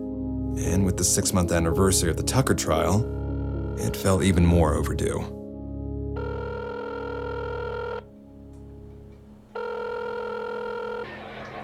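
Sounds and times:
speech: 0.5 - 3.2, 3.8 - 5.4
outgoing phone call ringback tone: 2.7 - 4.4, 6.2 - 8.2, 8.8 - 11.1.

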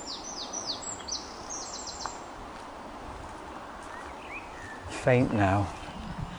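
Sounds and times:
bird calls with high descending chirps in a forest: 0.0 - 2.3, 3.4 - 6.3
rustling leaves: 0.0 - 6.3
wind in a forest: 0.0 - 6.3
speech: 5.0 - 5.8.

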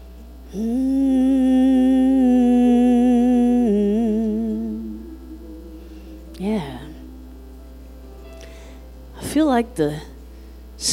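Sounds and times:
speech: 0.5 - 0.8, 9.6 - 10.1
people humming a sustained note: 0.5 - 9.1.

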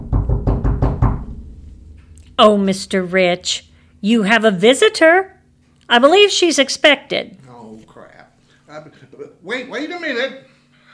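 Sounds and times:
firm official-sounding knock at a door: 0.0 - 2.6
speech: 2.4 - 5.3, 5.9 - 7.4, 8.7 - 10.5.

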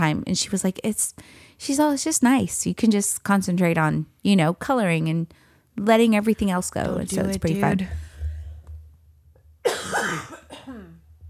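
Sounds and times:
speech: 0.0 - 8.1
faint low hum: 6.0 - 11.2
harsh wheezy cough: 9.6 - 11.0.

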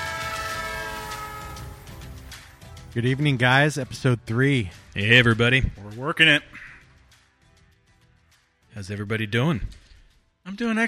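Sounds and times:
train horn blaring: 0.0 - 2.4
speech: 2.9 - 6.7, 8.8 - 9.8, 10.4 - 10.8.

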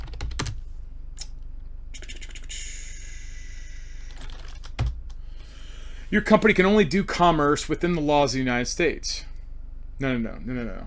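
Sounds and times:
typing on a computer keyboard: 0.0 - 0.6, 4.1 - 5.2
quiet hum: 0.0 - 10.8
speech: 6.1 - 9.3, 10.0 - 10.8.

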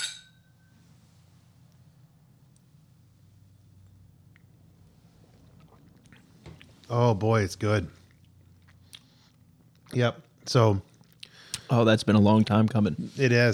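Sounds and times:
glasses clinking in a whisky toast: 0.0 - 0.6
speech: 6.9 - 8.0, 10.0 - 10.9, 11.7 - 13.5.

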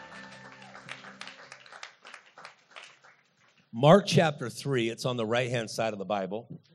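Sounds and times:
church audience clapping softly: 0.0 - 4.0
speech: 3.7 - 6.7.

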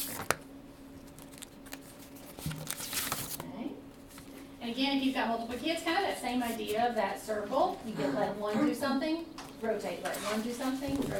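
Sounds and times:
low room hum: 0.0 - 11.1
small paper yeast packet torn open: 1.1 - 3.4
speech: 4.8 - 11.1.

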